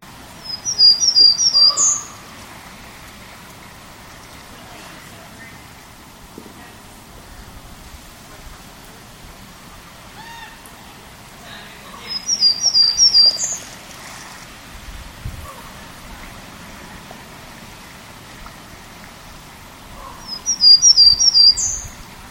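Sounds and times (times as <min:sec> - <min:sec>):
soft steady hiss: 0:00.0 - 0:22.2
Townsend's Warbler song: 0:00.1 - 0:02.4, 0:03.7 - 0:05.8, 0:11.5 - 0:14.4, 0:19.2 - 0:22.2.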